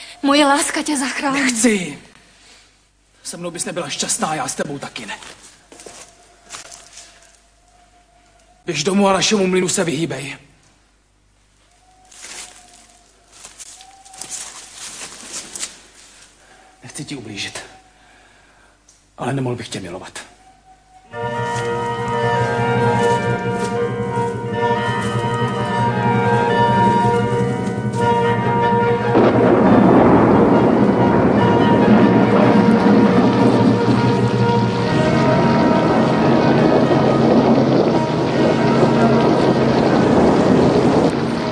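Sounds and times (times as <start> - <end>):
speech: 0.2 - 2.1, 3.3 - 5.5, 8.7 - 10.5, 19.2 - 20.3
sustained tonal droning sounds: 21.0 - 41.5
heavy rain: 21.2 - 41.5
rolling thunder: 21.2 - 41.5.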